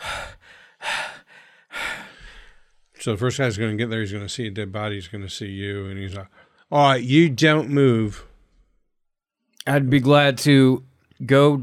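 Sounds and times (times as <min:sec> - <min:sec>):
heavy ragged panting out of breath: 0:00.0 - 0:02.7
speech: 0:03.0 - 0:08.3, 0:09.6 - 0:11.6.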